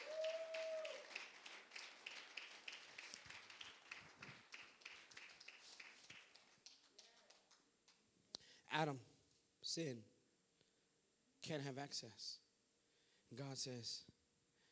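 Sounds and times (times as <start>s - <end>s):
audience clapping: 0.0s - 8.0s
speech: 8.7s - 9.1s, 9.8s - 10.1s, 11.4s - 12.4s, 13.3s - 14.2s.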